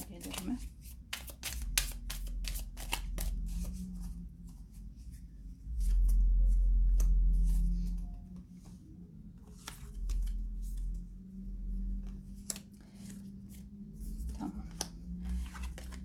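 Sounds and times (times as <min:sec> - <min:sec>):
tarot cards being shuffled: 0:00.0 - 0:04.1, 0:12.0 - 0:13.6, 0:14.2 - 0:16.0
low steady rumble: 0:00.0 - 0:16.0.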